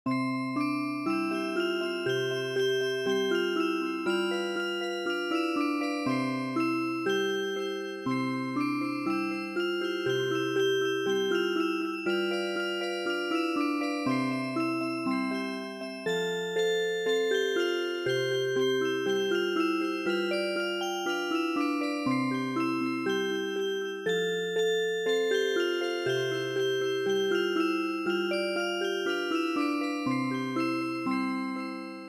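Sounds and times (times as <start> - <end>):
music box playing traditional polka, MIDI: 0.5 - 32.0.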